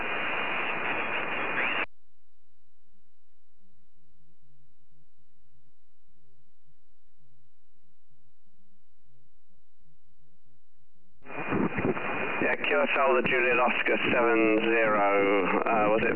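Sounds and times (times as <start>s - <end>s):
amateur radio static hiss: 0.0s - 1.9s, 11.2s - 16.1s
faint warble of amateur radio interference: 0.0s - 1.9s, 11.2s - 16.1s
speech: 12.8s - 16.1s.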